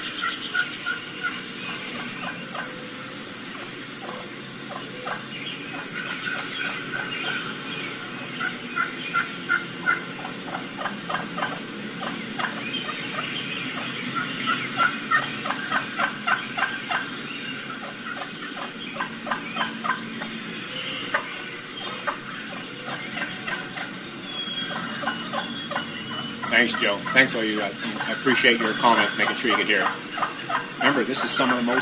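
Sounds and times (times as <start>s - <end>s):
steady hiss: 0.0s - 31.8s
wild turkeys giving soft clucks and purrs: 0.0s - 31.8s
speech: 26.7s - 30.0s, 31.0s - 31.8s.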